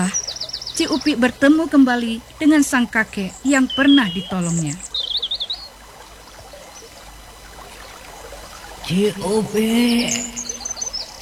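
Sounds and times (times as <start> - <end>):
high bright bird chirps and trill: 0.0 - 1.3, 2.8 - 5.8, 9.9 - 11.2
flowing river: 0.0 - 11.2
speech: 0.8 - 4.9, 8.9 - 10.4.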